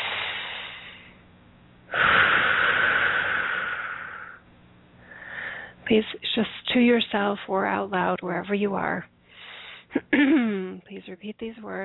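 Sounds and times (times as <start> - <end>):
slow deep breathing during a guided meditation: 0.0 - 1.2, 1.9 - 4.4, 5.0 - 5.8, 9.2 - 9.9
speech: 5.9 - 9.2, 10.0 - 11.8.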